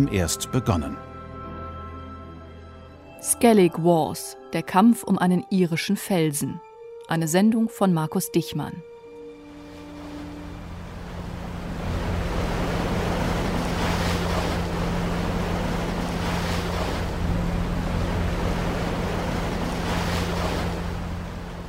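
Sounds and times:
speech: 0.0 - 1.1, 3.2 - 8.9
small fishing boat engine droning: 9.1 - 21.6
choppy Atlantic waves slapping against the hull: 9.6 - 21.6
gusts of wind: 9.6 - 21.6.

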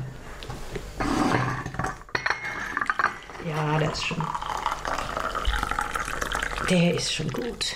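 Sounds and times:
china clinking: 1.3 - 3.3
tea pouring into cups: 2.7 - 7.7
speech: 3.5 - 4.5, 6.7 - 7.7.

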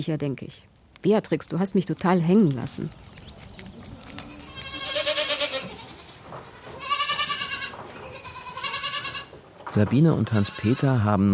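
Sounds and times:
speech: 0.0 - 3.1, 9.8 - 11.3
faint rustling farmyard background: 2.0 - 10.8
goats bleating: 3.9 - 9.4, 10.2 - 11.1.

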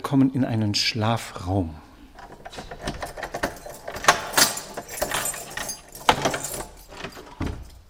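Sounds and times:
speech: 0.1 - 1.8
chapel door being unlocked and pushed open: 2.0 - 7.8
keys jangling in a chapel door lock: 2.1 - 7.8.

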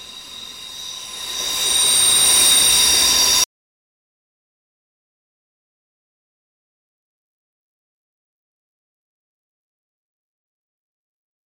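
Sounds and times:
S-Bahn commuter train wheels squealing: 0.0 - 3.5.

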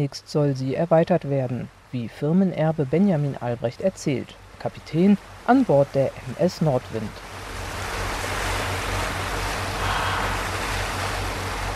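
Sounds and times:
speech: 0.0 - 7.3
broad rushing water noise of North Sea waves: 0.2 - 11.7
steady low engine drone from two motors of an ocean-going yacht: 7.2 - 11.7.

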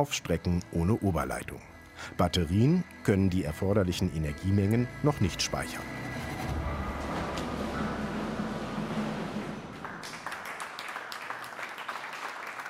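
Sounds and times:
speech: 0.0 - 6.0
low rumble: 6.0 - 10.1
crowd applauding at a truck presentation: 6.8 - 12.6.

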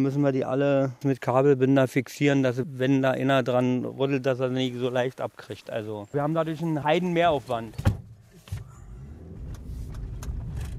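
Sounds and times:
speech: 0.0 - 7.9
car road noise: 1.2 - 10.7
car engine rumble driving along a forest race route: 6.0 - 10.7.

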